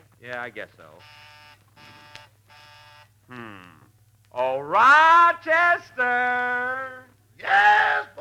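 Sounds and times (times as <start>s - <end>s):
speech: 0.2s - 1.9s, 3.3s - 8.1s
doorbell buzzer: 1.0s - 3.1s.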